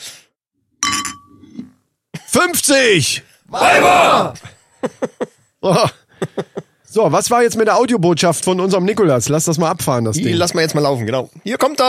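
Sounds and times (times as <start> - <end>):
glasses clinking together in a toast: 0.8 - 1.6
speech: 2.4 - 11.8
laughter: 4.0 - 6.8.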